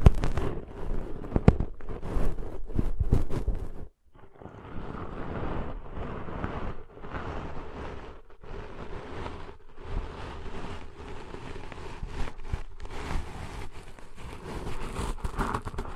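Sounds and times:
sharp clicks and pops: 0:00.0 - 0:03.8, 0:11.7 - 0:15.9
deep ear cleaning scratching and crackly rustling: 0:00.0 - 0:15.9.

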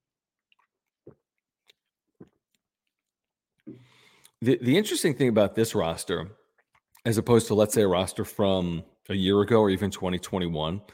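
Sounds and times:
gulping swallows: 0:00.4 - 0:04.4
person sipping and slurping a drink: 0:00.4 - 0:04.4
breathy exhale: 0:03.7 - 0:04.3
speech: 0:04.4 - 0:06.4, 0:07.0 - 0:10.9.

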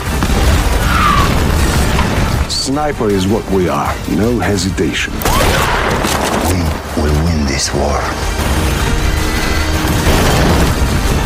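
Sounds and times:
rocket-propelled grenade explosion: 0:00.0 - 0:02.6, 0:05.2 - 0:06.8, 0:09.8 - 0:11.2
speech: 0:02.7 - 0:06.1, 0:07.0 - 0:08.6.

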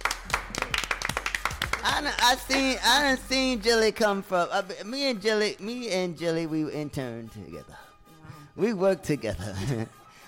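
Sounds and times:
several people applauding: 0:00.0 - 0:03.3
speech: 0:01.8 - 0:07.9, 0:08.6 - 0:10.0.

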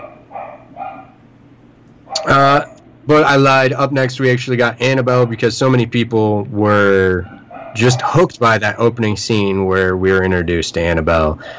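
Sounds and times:
dog barking outside the house: 0:00.0 - 0:01.2, 0:02.1 - 0:02.6, 0:07.2 - 0:08.3
speech: 0:02.2 - 0:11.5.

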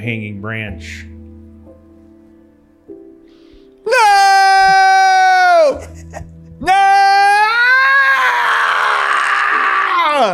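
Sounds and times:
speech: 0:00.0 - 0:01.1, 0:10.2 - 0:10.3
person screaming: 0:03.9 - 0:10.3.

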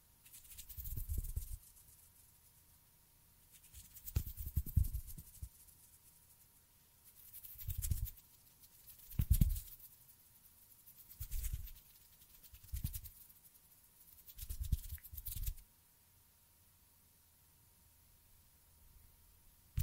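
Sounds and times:
faint steady tone: 0:00.0 - 0:19.8
finger fluttering and hand sounds: 0:00.2 - 0:02.4, 0:03.5 - 0:06.5, 0:07.1 - 0:15.6.

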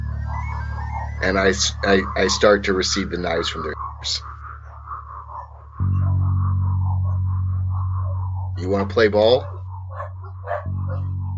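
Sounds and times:
low engine-like hum: 0:00.0 - 0:11.3
dogs barking: 0:00.4 - 0:05.8, 0:08.0 - 0:11.3
speech: 0:01.2 - 0:04.3, 0:08.7 - 0:09.6.

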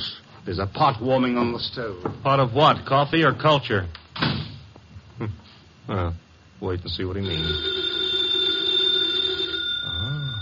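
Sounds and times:
speech: 0:00.4 - 0:04.3, 0:05.2 - 0:07.8
telephone ringing with a metallic warbling tone: 0:07.2 - 0:10.4.

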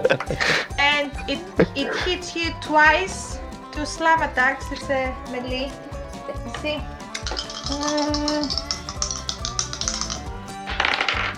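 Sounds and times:
laughter: 0:00.0 - 0:02.3
speech: 0:00.1 - 0:00.7, 0:01.3 - 0:07.0, 0:07.7 - 0:08.7
dice clattering across a hard surface: 0:07.2 - 0:11.3.

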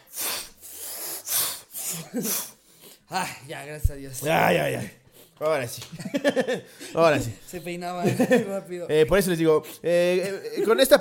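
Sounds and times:
person imitating sneezing with breathy hissing bursts: 0:00.0 - 0:02.6
speech: 0:01.9 - 0:10.9
laughter: 0:05.8 - 0:06.9, 0:07.8 - 0:08.7.

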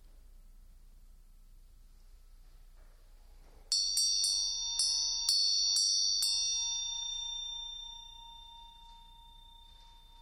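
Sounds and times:
small bell struck during a guided breathing meditation: 0:03.7 - 0:10.2.

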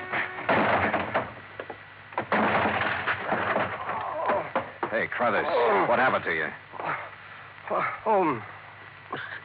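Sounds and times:
locked office door being forced open, rattling, scraping and banging: 0:00.0 - 0:05.0
sharp knocks: 0:00.1 - 0:05.0
speech: 0:05.2 - 0:06.7, 0:07.7 - 0:09.4.

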